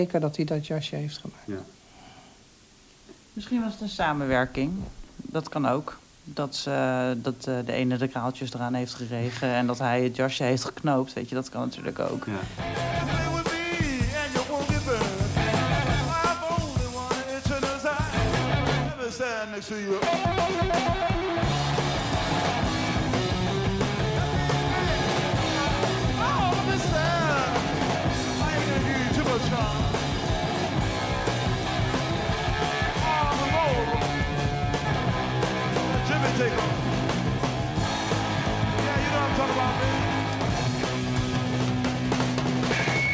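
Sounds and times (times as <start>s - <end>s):
speech: 0.0s - 1.8s, 3.4s - 13.2s, 19.6s - 21.1s
driving electric guitar at a live rock performance: 12.4s - 19.0s, 20.0s - 43.1s.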